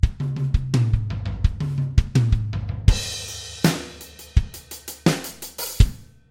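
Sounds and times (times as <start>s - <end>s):
drum kit: 0.0s - 6.2s.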